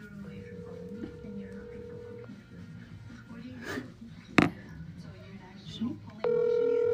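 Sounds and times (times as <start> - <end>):
faint voices: 0.0 - 6.9
outgoing phone call ringback tone: 0.4 - 2.4, 6.2 - 6.9.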